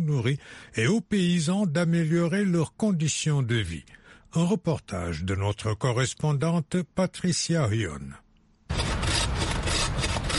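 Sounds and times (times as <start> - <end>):
speech: 0.0 - 8.2
hand saw cutting black wattle acacia wood in South Africa: 8.7 - 10.3.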